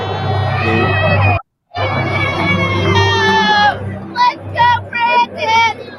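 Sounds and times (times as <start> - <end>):
large crowd booing: 0.0 - 5.9.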